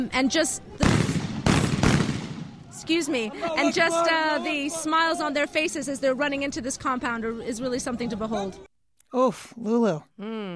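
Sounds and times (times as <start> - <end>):
speech: 0.0 - 0.9, 2.8 - 10.5
dense noisy outdoor din: 0.0 - 8.7
celebratory gunshots: 0.8 - 2.6.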